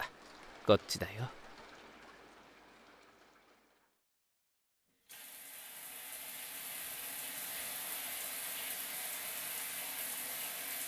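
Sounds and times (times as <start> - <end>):
shower water running: 0.0 - 4.0, 5.0 - 10.8
speech: 0.7 - 1.4.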